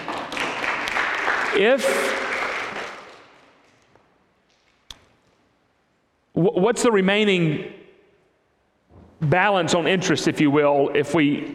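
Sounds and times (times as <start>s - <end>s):
audience clapping: 0.0s - 4.0s
speech: 1.6s - 2.3s, 6.4s - 7.8s, 9.2s - 11.5s.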